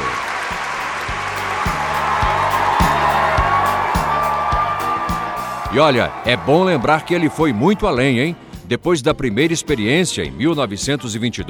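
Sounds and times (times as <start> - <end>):
crowd clapping: 0.0 - 8.4
steady rhythmic low thumping: 0.5 - 6.5
speech: 5.7 - 11.4.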